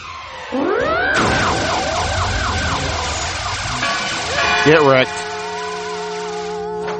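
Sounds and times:
sonic blast effect from a charged-up sonic bark: 0.0 - 6.4
speech: 0.5 - 0.9, 4.7 - 5.2.

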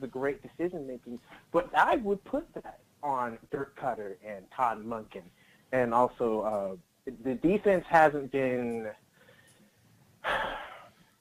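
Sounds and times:
speech: 0.0 - 9.0
sharp breath: 9.2 - 11.1.

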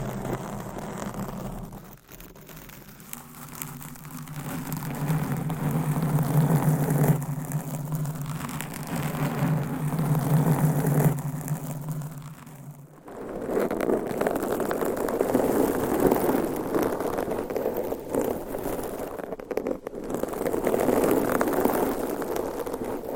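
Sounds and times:
dense bright nail scratching on a microphone: 0.0 - 12.9
rubbing against a microphone cover: 0.0 - 23.1
rustling: 0.0 - 23.1
low droning hum: 3.6 - 13.4.

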